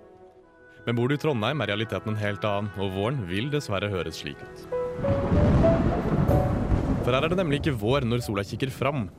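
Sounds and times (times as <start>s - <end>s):
speech: 0.8s - 5.7s, 7.1s - 9.1s
steady spring rainfall in Trondheim: 4.7s - 9.1s.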